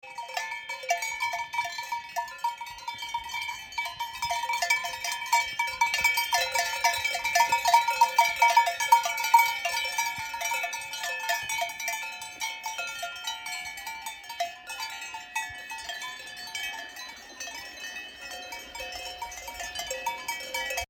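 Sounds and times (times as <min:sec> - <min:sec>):
cowbells: 0:00.0 - 0:20.8.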